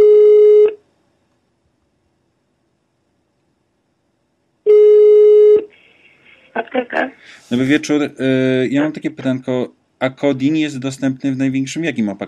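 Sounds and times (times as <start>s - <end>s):
phone call ringing tone beeps: 4.7s - 5.7s
speech: 6.8s - 12.2s.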